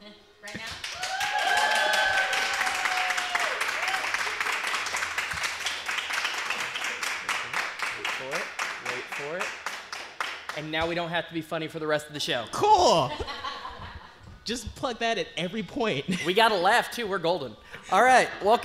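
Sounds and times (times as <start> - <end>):
small audience clapping enthusiastically: 0.6 - 10.8
audience cheering and whooping: 0.9 - 4.6
speech: 10.8 - 13.4, 14.5 - 18.6.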